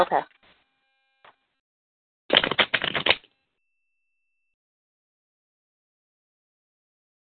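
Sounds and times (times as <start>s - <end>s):
speech: 0.0s - 0.4s
deck of cards being shuffled: 2.3s - 3.3s.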